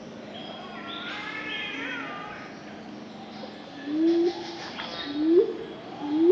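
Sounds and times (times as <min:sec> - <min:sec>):
steady background noise: 0:00.0 - 0:06.3
Superb fruit dove giving low rising hoots: 0:03.3 - 0:06.3.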